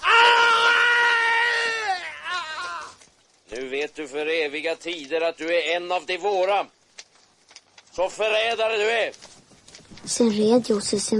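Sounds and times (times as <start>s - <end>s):
man screaming in pain: 0.0s - 3.0s
man's gasping wail: 0.0s - 3.0s
speech: 3.5s - 6.8s, 8.0s - 9.3s, 10.0s - 11.1s.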